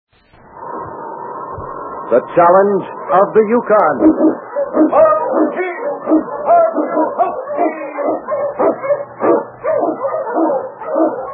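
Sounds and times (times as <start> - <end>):
speech: 2.1 - 6.4
sled dog barking and yipping: 4.0 - 11.3.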